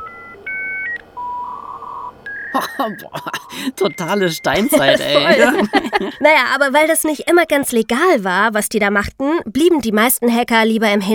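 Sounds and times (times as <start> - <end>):
acoustic coupler modem touch-tone dialing beeps: 0.0 - 5.6
acoustic coupler modem steady wavering tone: 0.0 - 7.5
laughter: 2.5 - 6.4
speech: 2.6 - 11.1.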